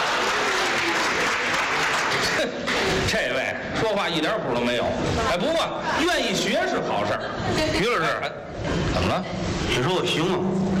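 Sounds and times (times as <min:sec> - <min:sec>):
thunderous applause from an audience: 0:00.0 - 0:02.5
speech: 0:02.4 - 0:10.7.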